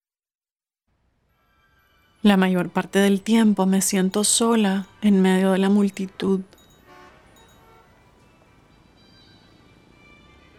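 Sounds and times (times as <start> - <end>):
speech: 2.2 - 6.6
street traffic rumbling past: 2.3 - 10.5
faint high horn-like tones: 4.6 - 10.5.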